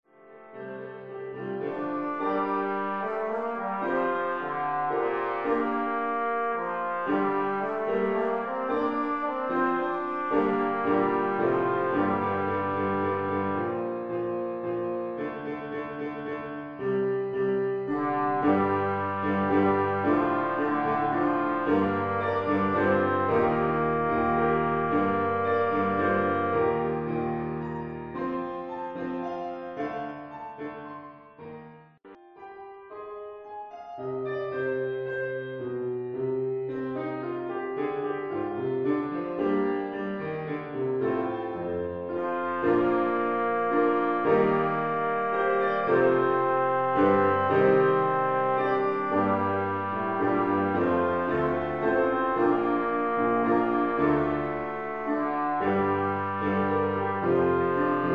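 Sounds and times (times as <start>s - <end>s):
piano: 0.0s - 58.1s
trombone: 1.3s - 27.6s, 40.6s - 58.1s.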